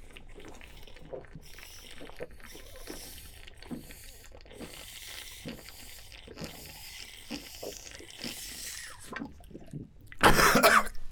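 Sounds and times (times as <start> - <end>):
single loud harsh cough: 10.2 - 11.0.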